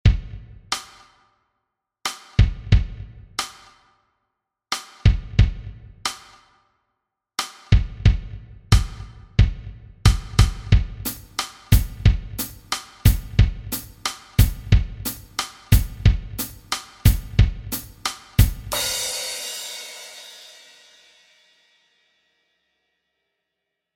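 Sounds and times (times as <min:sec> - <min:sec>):
drum kit playing: 0:00.0 - 0:01.1, 0:02.1 - 0:03.8, 0:04.7 - 0:06.4, 0:07.4 - 0:21.1.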